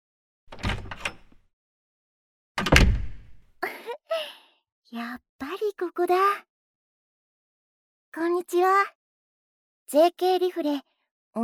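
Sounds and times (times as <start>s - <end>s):
door being unlatched and opened: 0.5s - 1.4s, 2.6s - 3.5s
speech: 4.9s - 6.5s, 8.2s - 9.0s, 9.9s - 11.4s.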